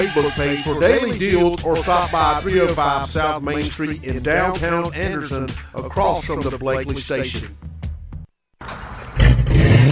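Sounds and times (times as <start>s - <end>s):
speech: 0.0s - 7.7s
car engine cranking and catching: 8.6s - 9.9s
car engine revving with custom exhaust: 8.9s - 9.9s.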